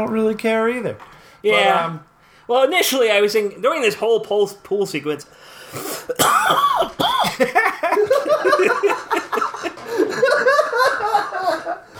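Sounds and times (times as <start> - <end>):
speech: 0.0 - 8.7
person coughing: 5.9 - 7.4
laughter: 7.2 - 11.9.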